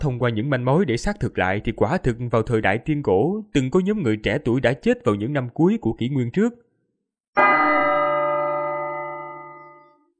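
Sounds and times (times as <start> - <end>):
speech: 0.0 - 6.6
ancient bell ringing through the city: 7.4 - 10.1.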